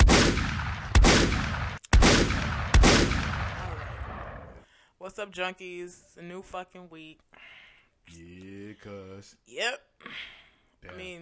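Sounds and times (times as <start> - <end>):
booming gunshots with tail: 0.0 - 4.6
speech: 5.1 - 7.5, 8.1 - 11.2.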